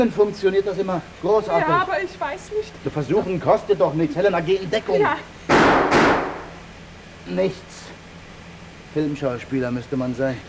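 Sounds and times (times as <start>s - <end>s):
speech: 0.0s - 5.9s, 7.3s - 7.7s, 9.0s - 10.4s
pistol shots fired at a door lock: 5.5s - 6.6s.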